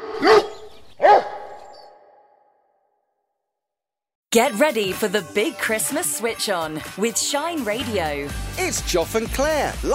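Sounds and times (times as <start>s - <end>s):
working Clumber Spaniel barking: 0.0s - 2.2s
speech: 4.4s - 9.9s.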